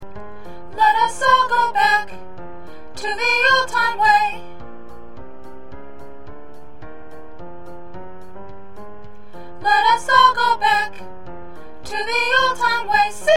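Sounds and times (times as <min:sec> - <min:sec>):
soprano singing: 0:00.7 - 0:02.4, 0:03.0 - 0:04.5, 0:09.6 - 0:11.2, 0:11.8 - 0:13.3.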